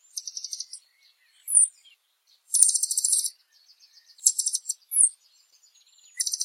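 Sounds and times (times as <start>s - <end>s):
blue dacnis singing: 0.2s - 0.8s, 1.4s - 1.8s, 2.5s - 3.4s, 4.2s - 5.2s, 6.2s - 6.4s.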